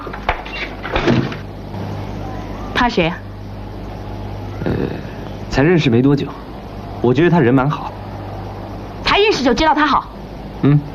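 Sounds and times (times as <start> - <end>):
door being shut with a thud and brief rattle: 0.4 - 1.4
speech: 2.8 - 3.2, 4.6 - 6.4, 7.0 - 7.9, 9.4 - 10.9.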